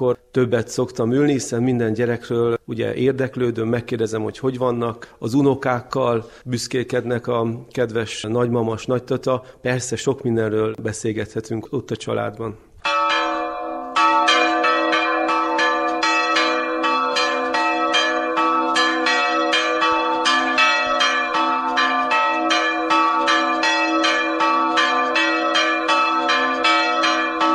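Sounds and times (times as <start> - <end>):
speech: 0.0 - 13.0
church bells pealing from a bell tower: 12.8 - 27.5.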